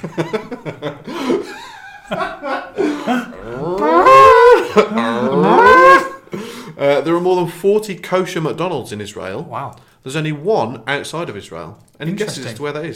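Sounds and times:
speech: 0.0 - 3.2, 7.0 - 12.9
laughter: 0.0 - 6.2
cow mooing: 3.4 - 6.2.

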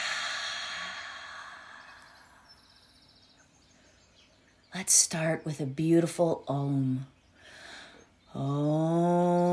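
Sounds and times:
deep breath exhale during a guided meditation: 0.0 - 2.6
speech: 4.8 - 7.2, 8.4 - 9.4.

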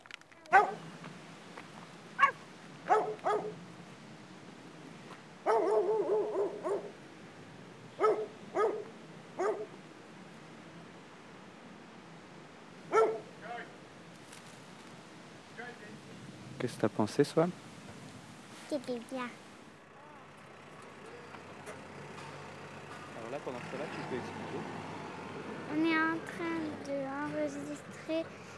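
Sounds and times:
hiss: 0.0 - 19.9
dog barking: 0.5 - 0.8, 2.2 - 3.6, 5.4 - 7.0, 8.0 - 9.8, 12.9 - 13.3
speech: 16.6 - 17.6, 18.8 - 19.4, 23.4 - 24.8, 25.7 - 28.5.

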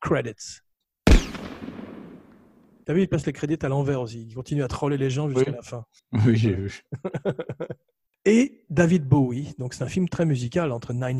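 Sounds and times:
speech: 0.1 - 0.6, 2.9 - 11.1
gunshot in a film with rumbling echo: 1.1 - 2.6
laughter: 6.6 - 7.9.

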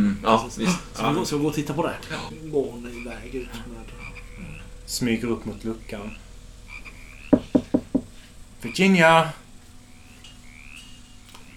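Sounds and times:
speech: 0.2 - 4.1, 4.9 - 6.2, 8.6 - 9.4
knocking: 6.8 - 8.3.

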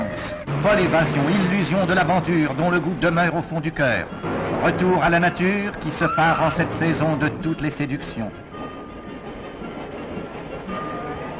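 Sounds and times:
passing train clattering on rails: 0.0 - 11.3
speech: 0.6 - 8.5.

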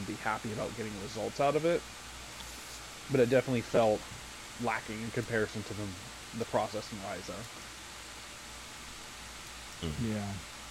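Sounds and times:
steady microphone static hiss: 0.0 - 10.6
speech: 0.1 - 2.1, 3.1 - 7.7, 9.8 - 10.5.

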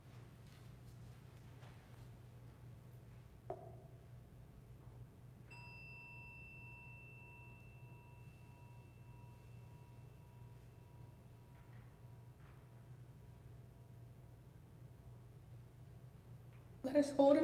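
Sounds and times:
low steady hum: 0.0 - 17.4
soft knock: 3.5 - 3.9
meditation chime struck and ringing: 5.5 - 11.6
speech: 16.9 - 17.4.

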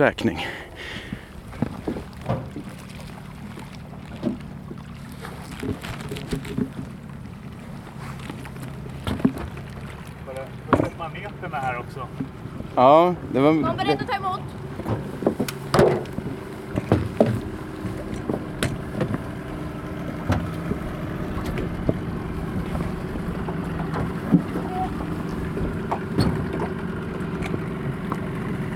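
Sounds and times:
speech: 0.0 - 1.0, 12.8 - 14.6
boat engine idling: 0.0 - 28.7
water noise: 0.0 - 28.7
wind: 0.0 - 28.7.

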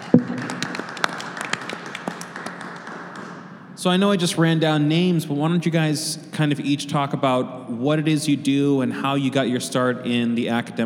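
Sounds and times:
audience clapping for panelists: 0.0 - 3.5
speech: 3.8 - 10.8.

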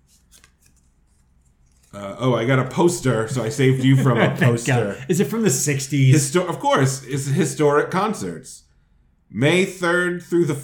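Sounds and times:
cards being shuffled: 0.0 - 2.0
speech: 2.0 - 8.6, 9.3 - 10.6
laughter: 3.3 - 5.6.

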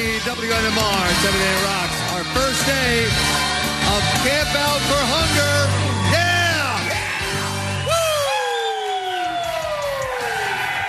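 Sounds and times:
speech: 0.0 - 6.2
lively crowd cheering and whooping in the morning: 5.3 - 10.8.

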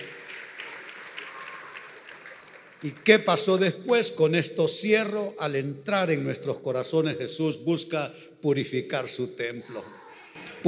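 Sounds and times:
church audience clapping many hands: 0.0 - 3.7
church audience shouting hallelujah in praise: 0.7 - 2.5
speech: 2.8 - 10.6.

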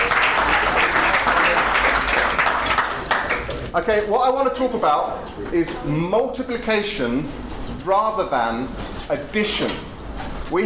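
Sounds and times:
audience applause: 0.0 - 3.7
speech: 3.8 - 9.9, 10.5 - 10.6.

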